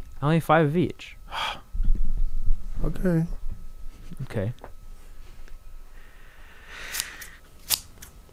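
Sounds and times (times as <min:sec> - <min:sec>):
speech: 0:00.2 - 0:01.6, 0:02.8 - 0:03.4, 0:04.2 - 0:04.7
scissors cutting paper: 0:06.9 - 0:08.2.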